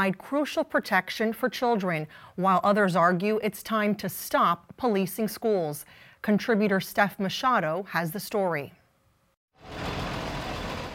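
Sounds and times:
speech: 0:00.0 - 0:08.8
large school bus engine rumble: 0:09.6 - 0:10.9
school bus road noise: 0:09.6 - 0:10.9.

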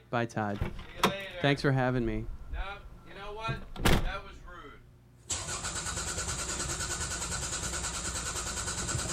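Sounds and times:
speech: 0:00.1 - 0:02.4, 0:03.4 - 0:04.2
car engine cranking without catching: 0:05.3 - 0:09.1.

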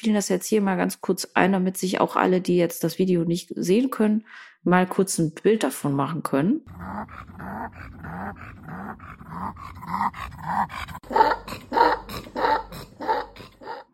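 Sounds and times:
speech: 0:00.0 - 0:13.0
dog struggling to breathe with heavy wheezing: 0:06.7 - 0:13.9.

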